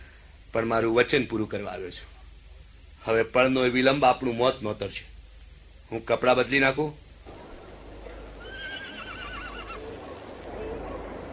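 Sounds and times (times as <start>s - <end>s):
constant rumbling noise: 0.0s - 11.3s
speech: 0.5s - 2.2s, 3.0s - 5.1s, 5.9s - 7.0s
horse neighing: 8.4s - 10.0s.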